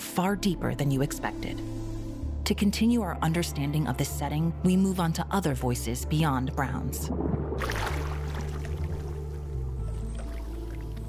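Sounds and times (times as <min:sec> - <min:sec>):
speech: 0:00.2 - 0:01.9, 0:02.5 - 0:07.9
low droning hum: 0:07.0 - 0:11.0
river water rushing: 0:07.6 - 0:09.4.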